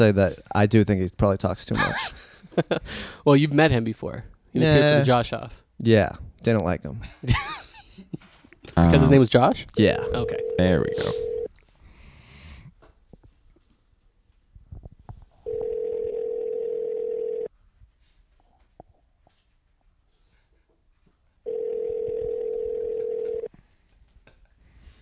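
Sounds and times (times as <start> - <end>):
speech: 0.0 - 11.3
laughter: 1.7 - 3.2, 7.0 - 9.4
telephone ringback tone: 10.0 - 11.5, 15.5 - 17.5, 21.5 - 23.5.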